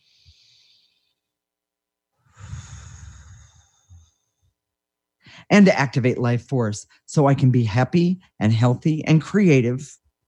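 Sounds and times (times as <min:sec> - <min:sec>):
person taking a deep breath and sighing: 0:00.0 - 0:01.3, 0:02.2 - 0:04.6
speech: 0:05.5 - 0:10.0.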